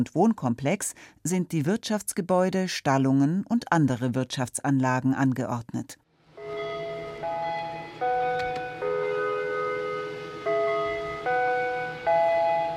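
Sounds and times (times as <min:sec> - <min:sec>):
speech: 0:00.0 - 0:06.0
chime gong ringing a mealtime signal: 0:06.4 - 0:12.7.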